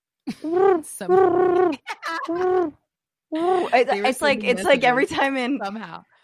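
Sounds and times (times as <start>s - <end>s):
person imitating a carrier pigeon cooing: 0.3s - 2.8s
speech: 0.3s - 6.1s
laughter: 1.6s - 2.7s.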